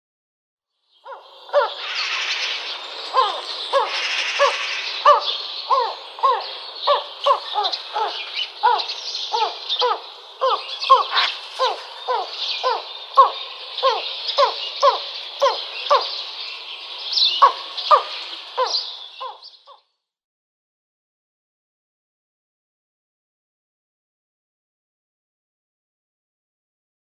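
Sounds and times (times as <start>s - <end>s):
tawny eagle calling: 1.0s - 16.2s, 17.3s - 19.6s.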